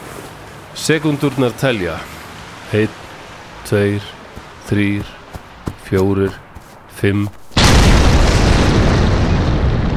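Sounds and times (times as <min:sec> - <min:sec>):
speech: 0:00.8 - 0:03.0, 0:03.6 - 0:05.2, 0:05.9 - 0:06.4, 0:07.0 - 0:07.4
heavy sustained roar of rumbling debris: 0:07.5 - 0:09.9
bomb explosion: 0:07.6 - 0:09.9.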